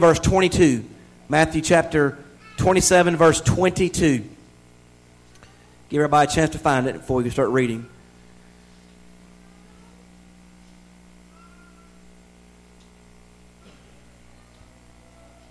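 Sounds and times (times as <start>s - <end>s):
speech: 0.0s - 4.3s, 5.9s - 7.9s
steady low electrical hum: 0.0s - 15.4s
faint meows from a few cats: 11.3s - 12.1s.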